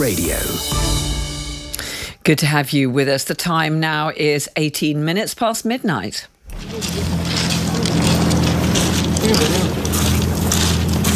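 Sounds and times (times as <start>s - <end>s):
speech: 0.0s - 1.0s, 2.3s - 7.2s, 9.3s - 9.8s
migrants stepping off a boat onto a beach near Dover: 6.5s - 11.1s.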